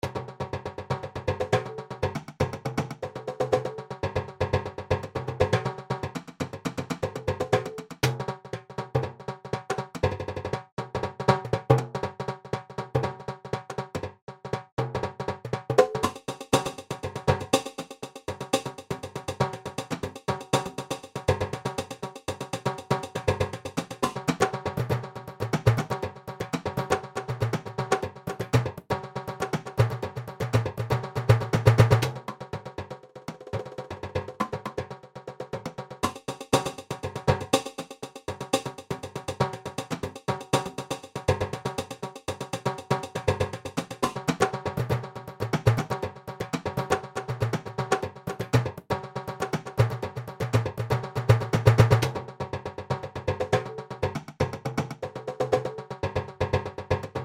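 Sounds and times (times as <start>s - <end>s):
Latin percussion kit: 0.0s - 57.2s.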